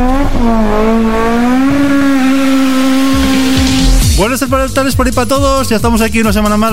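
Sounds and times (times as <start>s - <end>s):
race car engine revving: 0.0s - 4.3s
speech: 4.2s - 6.7s.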